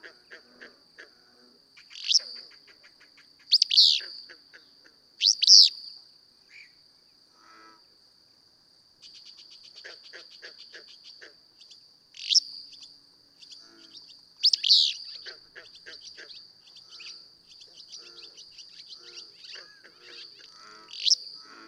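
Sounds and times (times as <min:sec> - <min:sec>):
steady high-pitched insect hum: 0:00.0 - 0:21.6
willow flycatcher singing sneezy buzzy phrases: 0:01.4 - 0:06.8, 0:09.0 - 0:21.6.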